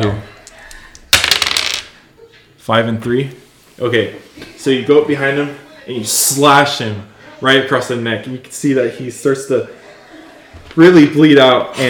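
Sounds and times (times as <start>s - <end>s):
speech: 0.0s - 0.3s, 2.6s - 9.8s, 10.8s - 11.8s
two six-sided dice rolled on a table: 0.5s - 2.0s
laughter: 9.6s - 10.8s.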